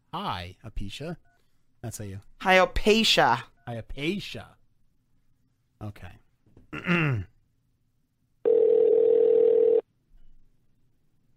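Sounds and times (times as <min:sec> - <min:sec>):
speech: 0:00.1 - 0:04.6, 0:05.8 - 0:07.3
telephone ringback tone: 0:08.5 - 0:09.8.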